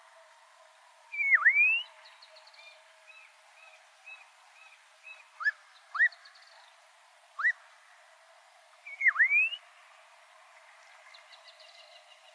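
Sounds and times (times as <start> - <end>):
black-crowned monjita dipping-then-rising whistle: 1.1 - 2.0, 8.9 - 9.6.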